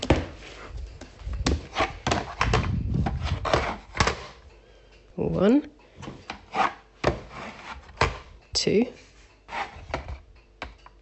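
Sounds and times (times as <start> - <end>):
bread dough being knocked back with thumps and slaps: 0.0 - 4.4, 6.0 - 8.3
speech: 5.4 - 5.7, 8.6 - 9.1.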